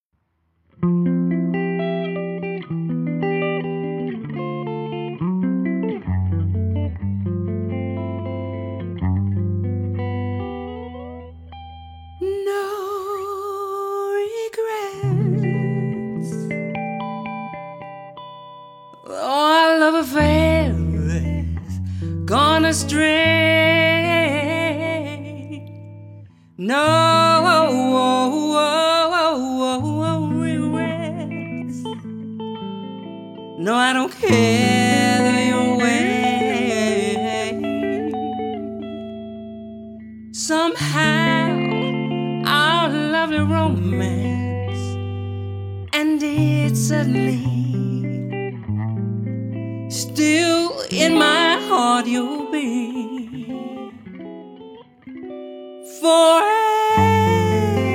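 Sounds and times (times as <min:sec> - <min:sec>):
guitar: 0:00.6 - 0:57.9
woman singing: 0:12.2 - 0:16.6, 0:19.0 - 0:25.8, 0:26.6 - 0:32.0, 0:33.6 - 0:39.2, 0:40.4 - 0:48.6, 0:49.9 - 0:54.5, 0:55.8 - 0:57.9.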